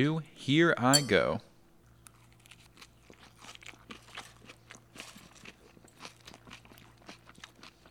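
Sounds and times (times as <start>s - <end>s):
speech: 0.0s - 1.5s
crunching and chewing a spinach salad with cucumbers, peppers and black bean quinoa patty: 1.8s - 7.9s.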